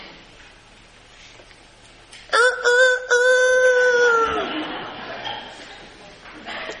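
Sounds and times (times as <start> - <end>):
rooster crowing: 2.3 - 4.5.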